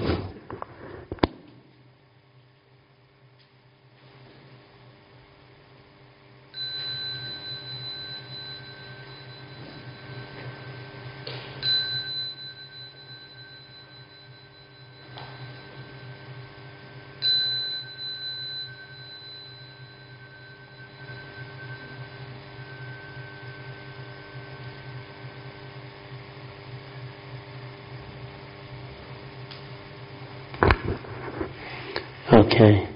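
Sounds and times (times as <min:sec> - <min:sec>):
low hum: 0:00.0 - 0:32.9
meditation bell struck and resonating: 0:06.6 - 0:26.6.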